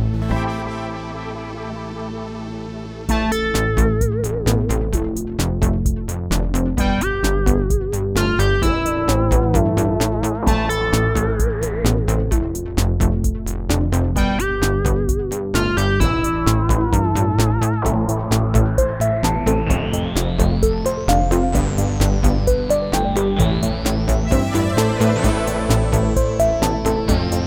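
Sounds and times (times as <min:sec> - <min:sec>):
synthpop music: 0:00.1 - 0:27.4.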